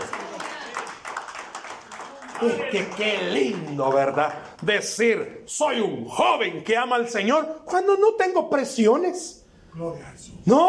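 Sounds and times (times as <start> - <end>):
congregation applauding: 0.0 - 5.1
speech: 2.4 - 10.6.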